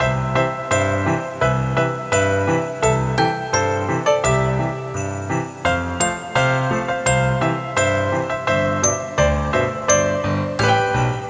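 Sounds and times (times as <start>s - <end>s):
bells jingling: 0.0s - 11.2s.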